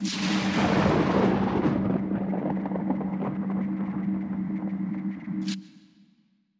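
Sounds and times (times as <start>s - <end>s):
distant lightning thunder: 0.2s - 5.2s.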